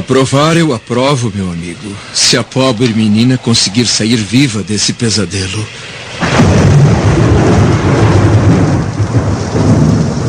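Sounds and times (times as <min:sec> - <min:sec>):
heavy rain pouring down: 0:00.0 - 0:10.2
speech: 0:00.1 - 0:07.7
deep rumbling thunder: 0:06.0 - 0:10.2.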